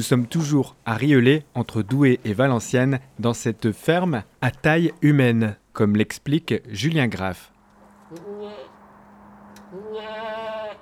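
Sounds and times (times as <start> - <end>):
speech: 0.0 - 7.5, 8.1 - 8.7
steady low hum: 7.4 - 10.8
milking goats bleating on a small goat farm in Rieulay: 8.1 - 8.8, 9.7 - 10.8.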